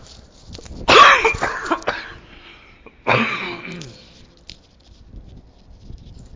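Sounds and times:
person with a post-nasal drip coughing: 0.9s - 4.2s.

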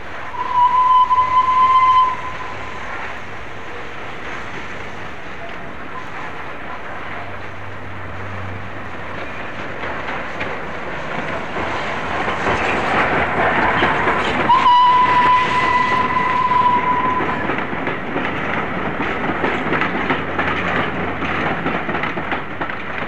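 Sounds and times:
steam locomotive pulling into station with steady rumbling hiss: 0.0s - 23.0s
steam locomotive shrill whistle blasts: 0.4s - 2.8s, 14.5s - 17.4s.

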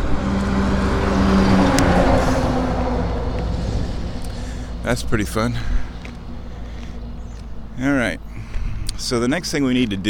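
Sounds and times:
heavy trucks rumbling along a town street: 0.0s - 10.0s
speech: 4.9s - 5.8s, 7.8s - 8.3s, 9.0s - 10.0s.

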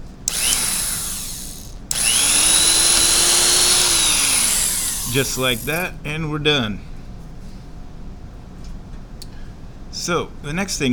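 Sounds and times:
power drill whirring while drilling a hole: 0.0s - 5.9s
speech: 5.2s - 6.9s, 10.1s - 10.9s.

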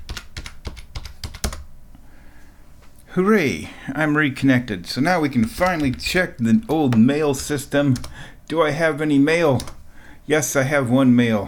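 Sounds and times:
fingers typing a password on a computer keyboard: 0.0s - 1.7s, 5.2s - 8.2s, 9.6s - 9.8s
speech: 3.2s - 11.4s.

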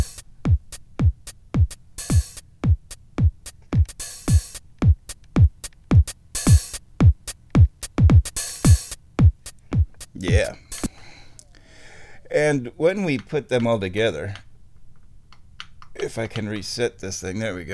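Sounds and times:
programmed kick drum thumping: 0.0s - 10.6s
programmed hissy hi-hat: 0.0s - 11.2s
speech: 12.4s - 14.5s, 16.1s - 17.7s.

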